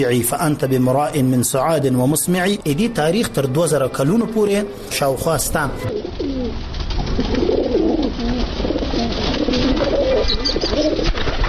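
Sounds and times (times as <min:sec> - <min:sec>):
speech: 0:00.0 - 0:07.6
pigeons cooing: 0:03.1 - 0:11.3.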